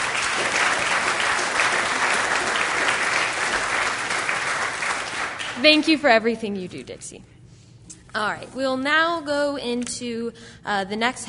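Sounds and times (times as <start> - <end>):
group applause for a birthday: 0.0 - 6.0
speech: 5.6 - 7.3, 8.2 - 11.2.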